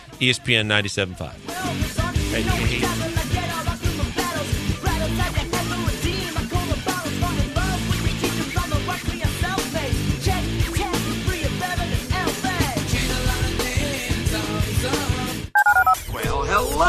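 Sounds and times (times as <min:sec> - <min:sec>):
speech: 0:00.2 - 0:03.0
rhythmic music: 0:01.4 - 0:15.0
telephone keypad dialing tones: 0:15.6 - 0:16.0.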